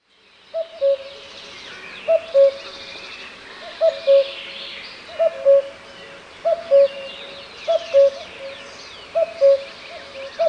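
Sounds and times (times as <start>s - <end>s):
common cuckoo calling: 0.6s - 1.2s, 2.1s - 2.6s, 3.7s - 4.4s, 5.1s - 5.8s, 6.4s - 10.4s.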